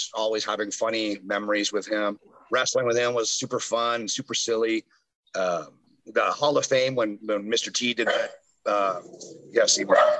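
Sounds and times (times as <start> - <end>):
speech: 0.0 - 10.1
dogs barking at the mailman: 8.0 - 8.4, 9.1 - 10.1.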